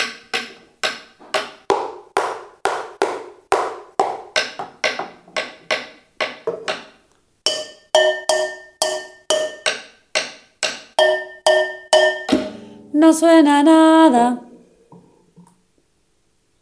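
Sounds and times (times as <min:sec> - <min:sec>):
wooden ladle used as a drumstick striking loudly: 0:00.0 - 0:13.0
speech: 0:13.0 - 0:14.5.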